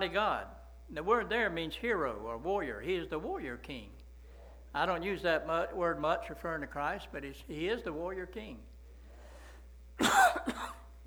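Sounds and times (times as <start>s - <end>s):
speech: 0.0s - 4.0s, 4.7s - 8.7s, 10.0s - 10.8s
harsh cough from a man: 10.0s - 10.9s.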